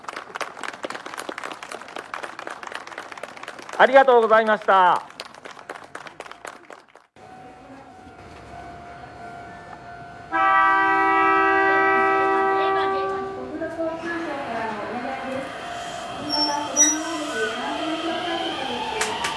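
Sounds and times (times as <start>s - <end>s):
speech: 3.8s - 5.1s
train rumbling away from station: 7.2s - 19.3s
train horn blast: 10.2s - 17.6s.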